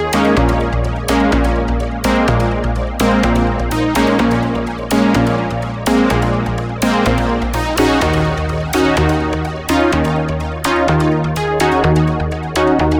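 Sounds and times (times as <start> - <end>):
synth stab: 0.2 - 12.8.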